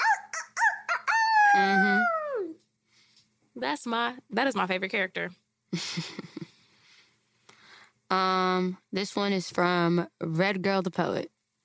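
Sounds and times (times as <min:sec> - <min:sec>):
person imitating a rooster crowing: 0:00.0 - 0:02.6
speech: 0:01.5 - 0:01.9, 0:03.6 - 0:06.3, 0:08.1 - 0:11.3.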